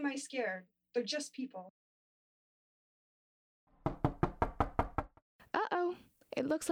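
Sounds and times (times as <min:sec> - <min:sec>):
speech: 0:00.1 - 0:01.8, 0:05.5 - 0:06.7
knocking on a door: 0:03.8 - 0:05.2.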